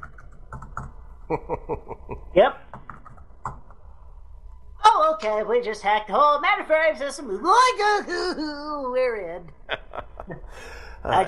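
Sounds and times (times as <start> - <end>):
computer keyboard keys being struck randomly: 0.0 - 1.0, 2.7 - 3.8
laughter: 1.3 - 2.2, 9.7 - 11.2
speech: 1.3 - 2.8, 5.2 - 9.8, 10.5 - 11.2.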